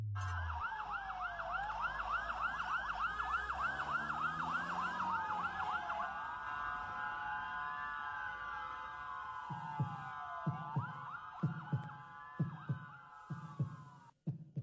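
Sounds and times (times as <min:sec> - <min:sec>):
ambulance siren yelping and wailing: 0:00.2 - 0:13.8
steady heartbeat with low paired lub-dub thumps: 0:09.5 - 0:14.6.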